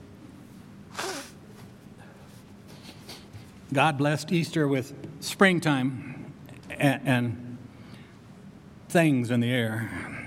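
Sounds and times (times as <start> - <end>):
person blowing nose: 0.9 - 1.4
speech: 3.7 - 6.1, 6.8 - 7.4, 8.9 - 10.2.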